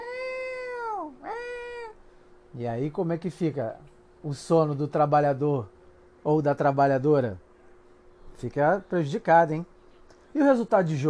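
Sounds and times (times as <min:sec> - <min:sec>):
cat in heat yowling: 0:00.0 - 0:02.0
speech: 0:02.6 - 0:07.4, 0:08.4 - 0:09.7, 0:10.3 - 0:11.0.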